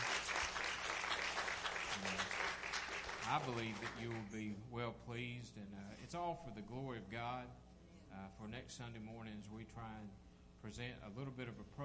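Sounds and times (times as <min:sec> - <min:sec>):
church congregation clapping in praise: 0:00.0 - 0:04.4
speech: 0:03.3 - 0:11.8.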